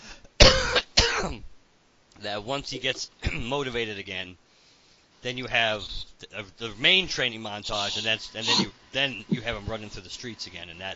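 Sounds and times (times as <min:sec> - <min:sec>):
harsh raspy coughs: 0:00.4 - 0:01.4, 0:03.2 - 0:03.5, 0:07.8 - 0:09.6
speech: 0:01.2 - 0:01.5, 0:02.2 - 0:04.4, 0:05.2 - 0:10.9.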